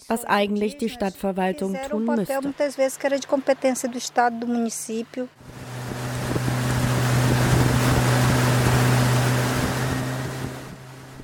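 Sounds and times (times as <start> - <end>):
speech: 0.1 - 5.7
motorboat engine drone on a river: 1.9 - 11.2
rushing water: 5.4 - 11.2
wind noise: 5.4 - 11.2.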